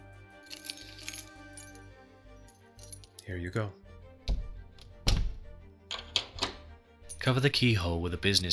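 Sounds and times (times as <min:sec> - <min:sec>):
key being handed over, jingling: 0:00.4 - 0:03.3
speech: 0:03.3 - 0:03.8, 0:07.2 - 0:08.5.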